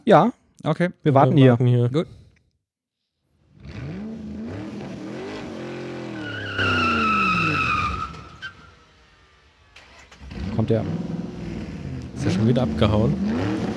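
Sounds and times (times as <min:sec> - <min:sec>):
speech: 0:00.0 - 0:02.2, 0:10.6 - 0:11.1, 0:12.2 - 0:13.5
car engine revving while pulling away: 0:03.4 - 0:13.7
car tire squeal: 0:03.6 - 0:13.7.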